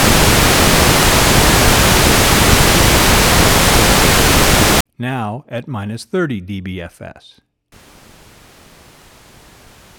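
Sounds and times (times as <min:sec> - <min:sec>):
pink noise test signal: 0:00.0 - 0:04.8, 0:07.8 - 0:09.9
speech: 0:05.0 - 0:07.8.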